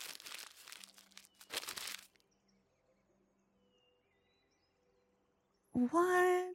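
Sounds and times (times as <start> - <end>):
two-page paper flyer being crumpled: 0.0 - 2.2
speech: 5.8 - 6.5.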